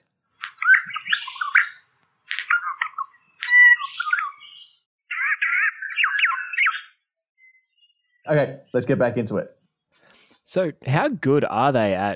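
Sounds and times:
Regent honeyeater normal and mimic calls: 0:00.4 - 0:09.0
speech: 0:08.3 - 0:09.6, 0:10.5 - 0:12.1.

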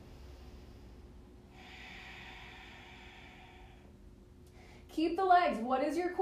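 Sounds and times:
faint breath taken while holding a yoga pose: 0:00.0 - 0:04.9
quiet noise: 0:00.0 - 0:06.2
speech: 0:05.0 - 0:06.2.

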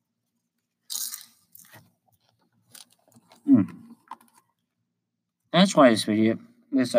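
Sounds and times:
person eating popcorn: 0:00.8 - 0:04.4
speech: 0:05.6 - 0:06.9.

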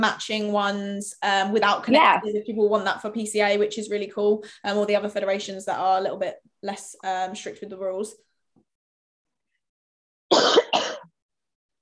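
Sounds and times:
speech: 0:00.0 - 0:08.3
harsh rasping coughs: 0:10.3 - 0:11.2.

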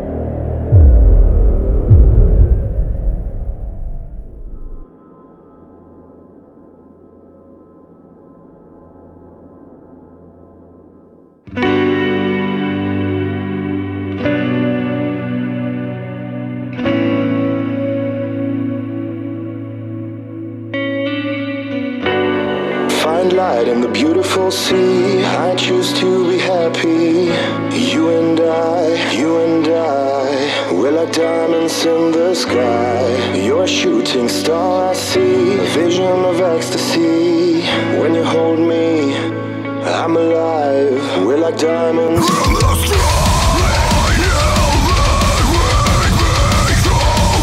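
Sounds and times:
loud distorted guitar chords in a heavy metal song intro: 0:00.0 - 0:04.8, 0:11.5 - 0:30.3, 0:31.0 - 0:47.4
low rumbling drone: 0:00.0 - 0:04.8
speech: 0:24.5 - 0:29.9, 0:31.0 - 0:43.0.

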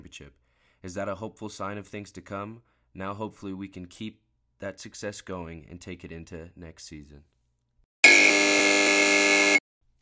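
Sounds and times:
speech: 0:00.1 - 0:07.3
loud harsh game buzzer: 0:08.0 - 0:09.6.

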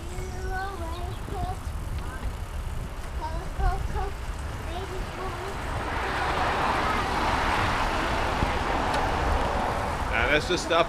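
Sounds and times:
road noise: 0:00.0 - 0:10.8
car pulling out onto the road: 0:04.7 - 0:10.8
speech: 0:10.4 - 0:10.8.

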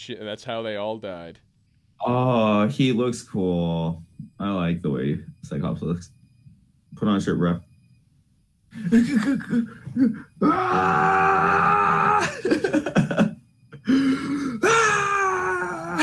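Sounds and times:
speech: 0:00.0 - 0:06.2, 0:07.0 - 0:07.7, 0:08.8 - 0:13.2
laughter: 0:08.8 - 0:10.1, 0:12.3 - 0:13.4
man screaming in anguish: 0:10.4 - 0:12.5, 0:14.6 - 0:16.0.

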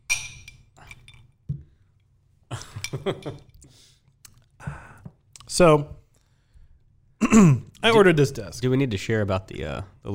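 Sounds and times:
glass clinking while taking a drink: 0:00.0 - 0:01.4
speech: 0:02.9 - 0:03.5, 0:05.6 - 0:06.0, 0:07.3 - 0:10.1.

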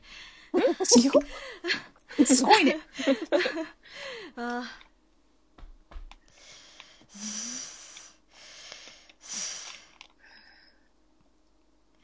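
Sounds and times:
deep breathing by a person settling their nerves: 0:00.0 - 0:00.6, 0:03.8 - 0:04.4, 0:06.2 - 0:10.9
laughter: 0:00.6 - 0:03.8
speech: 0:00.8 - 0:04.8, 0:07.2 - 0:07.6
person sniffing: 0:06.4 - 0:10.0.

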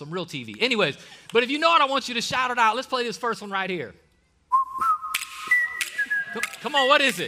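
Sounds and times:
speech: 0:00.0 - 0:04.0, 0:06.3 - 0:07.2
whistled melody of an old TV series theme tune: 0:04.5 - 0:07.2.

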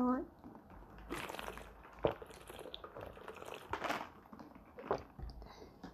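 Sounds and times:
person sipping and gulping water from a glass: 0:00.6 - 0:05.9
water pouring into a glass: 0:00.8 - 0:05.2.

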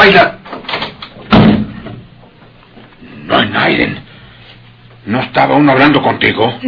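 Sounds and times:
speech: 0:00.1 - 0:00.4, 0:03.3 - 0:04.1, 0:05.0 - 0:06.6
door swinging open and bumping with a thud: 0:00.5 - 0:02.1.

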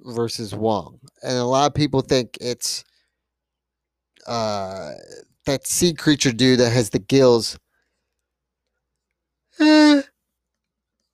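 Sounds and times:
speech: 0:00.0 - 0:02.9, 0:04.2 - 0:07.6, 0:09.6 - 0:10.1
person yawning: 0:09.6 - 0:10.0.

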